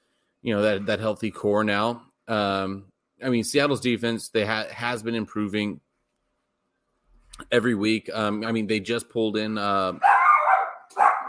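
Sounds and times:
speech: 0.4 - 5.9, 7.4 - 10.1
dog barking: 10.0 - 11.2.

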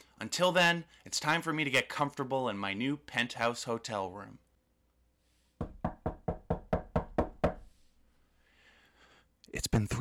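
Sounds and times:
speech: 0.2 - 4.4, 9.5 - 9.9
firm knocks banging on a door: 5.6 - 7.6.

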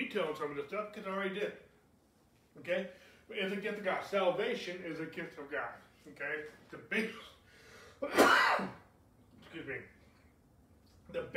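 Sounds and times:
speech: 0.1 - 1.7, 2.6 - 7.4, 8.0 - 8.8, 9.5 - 10.0, 11.1 - 11.3
person coughing during a spoken talk on salvation: 8.0 - 8.8.

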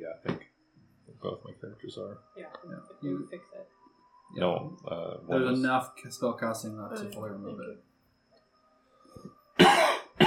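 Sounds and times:
speech: 1.2 - 7.9
loud harsh cough: 9.6 - 10.2.

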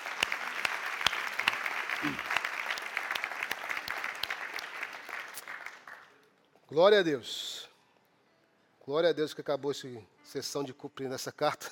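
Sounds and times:
church audience applauding: 0.0 - 6.2
speech: 2.0 - 2.3, 6.7 - 7.6, 8.9 - 11.7.

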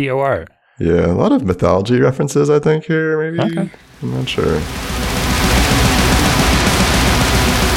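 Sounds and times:
speech: 0.0 - 5.0
harsh noise music of crackling static-like interference: 3.9 - 7.7.

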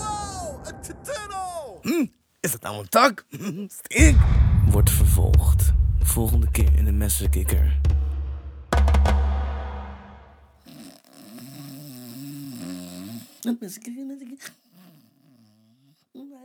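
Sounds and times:
speech: 2.0 - 8.0, 13.4 - 14.6
man snoring while asleep: 10.7 - 13.4.

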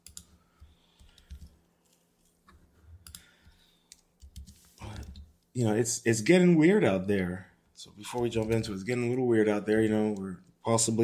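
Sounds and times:
typing on a computer keyboard: 0.0 - 0.3, 1.0 - 2.0, 3.0 - 5.1
speech: 5.6 - 11.0.

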